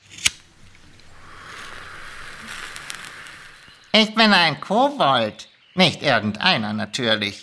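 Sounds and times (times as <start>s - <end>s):
hiss of lighter flame lighting a cigarette: 0.0s - 4.6s
speech: 4.0s - 7.4s.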